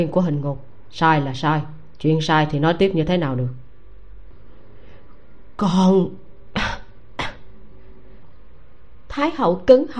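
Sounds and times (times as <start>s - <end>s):
speech: 0.0s - 3.6s, 5.6s - 6.2s, 9.2s - 9.9s
faint steady hum: 0.0s - 9.9s
dry coughs of a woman patting her chest: 6.6s - 7.5s.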